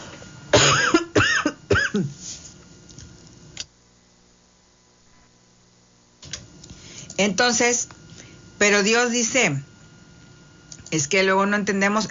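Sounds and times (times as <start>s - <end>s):
harsh coughs from a preacher during a religious talk: 0.5s - 2.2s
speech: 7.2s - 8.0s, 8.6s - 9.7s, 10.9s - 12.0s.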